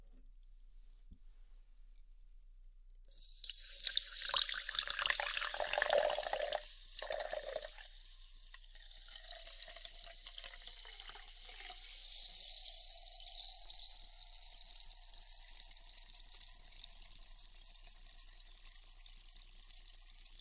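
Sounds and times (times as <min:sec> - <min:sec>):
sparkling water bubbles fizzing and crackling: 0:03.2 - 0:14.9
sparkling water being poured into a glass: 0:03.2 - 0:20.3.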